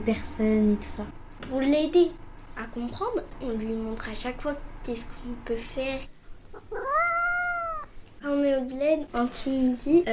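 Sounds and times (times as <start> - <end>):
speech: 0.0 - 6.2, 8.2 - 10.1
cat meowing: 6.5 - 8.0.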